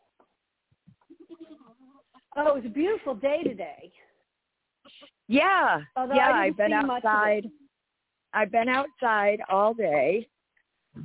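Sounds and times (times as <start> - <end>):
goat bleating: 1.0 - 2.2
speech: 2.4 - 4.1, 5.3 - 7.6, 8.3 - 10.3.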